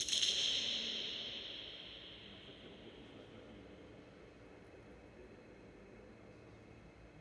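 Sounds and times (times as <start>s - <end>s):
distant sound source recorded with cardioid microphone: 0.0s - 3.4s.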